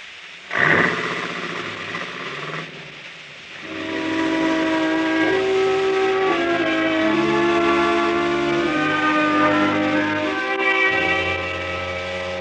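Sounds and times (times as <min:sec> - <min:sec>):
burst of noise: 0:00.0 - 0:12.4
factory steam whistle blowing a chord-like tone: 0:03.3 - 0:12.4.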